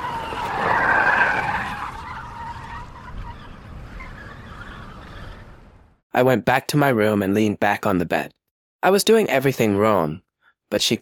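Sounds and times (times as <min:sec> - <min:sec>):
car tires squealing on pavement as it pulls away: 0:00.0 - 0:05.6
speech: 0:06.2 - 0:11.0.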